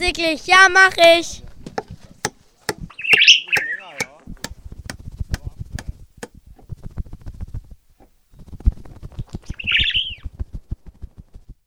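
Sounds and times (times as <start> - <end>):
speech: 0.0 - 1.4
bird chirping by a house's window panes: 2.8 - 4.2, 9.2 - 10.3.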